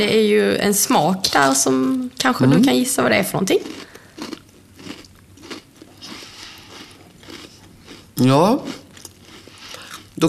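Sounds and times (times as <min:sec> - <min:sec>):
speech: 0:00.0 - 0:03.9, 0:08.2 - 0:08.8
crunching crackers with liquorice-flavored filling during a taste test: 0:03.6 - 0:10.2.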